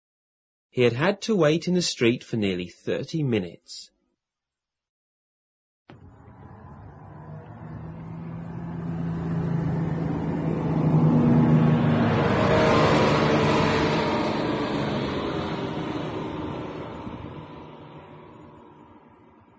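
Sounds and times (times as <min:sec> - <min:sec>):
speech: 0:00.8 - 0:03.9
large vehicle engine droning with whining tones: 0:05.9 - 0:19.5.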